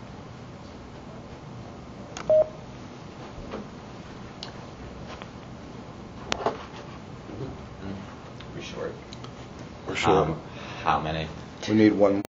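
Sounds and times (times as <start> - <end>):
steady low room hiss: 0.0 - 12.3
electronic telephone keypad beep: 2.2 - 2.6
speech: 10.0 - 12.3.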